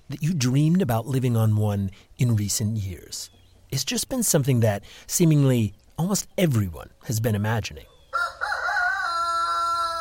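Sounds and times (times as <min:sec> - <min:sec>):
speech: 0:00.1 - 0:07.9
rooster crowing: 0:08.1 - 0:09.9.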